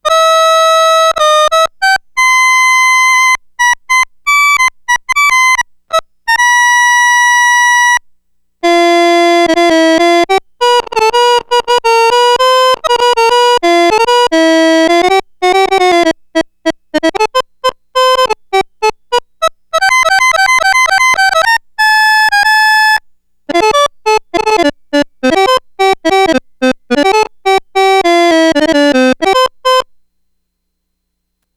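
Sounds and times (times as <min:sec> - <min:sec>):
Roland SH-2000 synthesizer accordion: 0:00.0 - 0:30.0.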